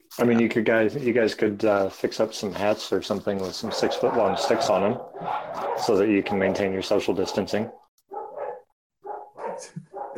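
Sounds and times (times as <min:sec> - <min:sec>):
speech: 0:00.2 - 0:07.8, 0:09.6 - 0:10.1
several dogs barking: 0:03.6 - 0:10.1.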